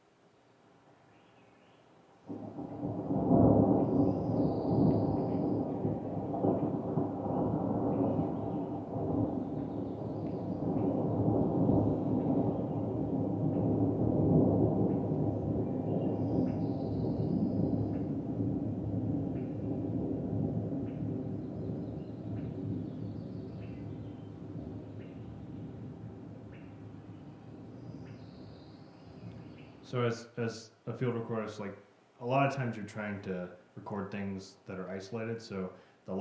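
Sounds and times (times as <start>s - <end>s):
faint rain hiss: 0.0s - 36.1s
thunder rolling: 2.3s - 31.8s
speech: 29.9s - 36.1s.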